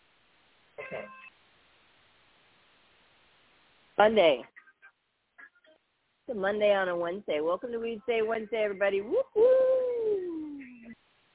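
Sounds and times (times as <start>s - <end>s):
phone giving a short electronic beep: 0.8s - 1.3s
speech: 0.9s - 1.3s, 4.0s - 4.5s, 6.3s - 9.9s.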